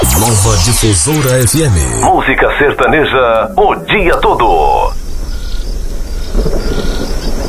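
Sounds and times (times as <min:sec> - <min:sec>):
speech: 0:00.2 - 0:05.0
rumble of thunder from an approaching rainstorm in the Pantanal: 0:06.3 - 0:07.4.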